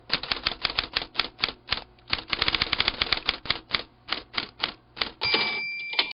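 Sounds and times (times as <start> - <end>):
typewriter keys: 0.1 - 6.1
typewriter bell: 5.2 - 6.1.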